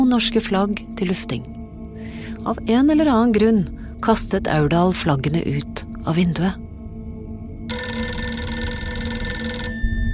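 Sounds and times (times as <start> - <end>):
speech: 0.1 - 1.6, 2.4 - 6.6
telephone ringing with an electric bell tone: 7.7 - 10.1.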